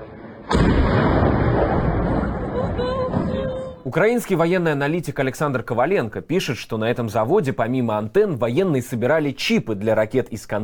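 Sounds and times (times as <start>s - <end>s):
loud explosion: 0.0s - 3.9s
roaring blast rumble: 0.0s - 3.9s
speech: 3.8s - 10.6s.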